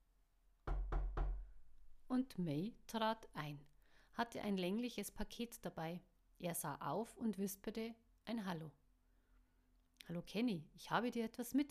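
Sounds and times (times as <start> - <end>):
firm knocking on a door: 0.6 - 1.6
speech: 2.1 - 8.8, 10.0 - 11.6.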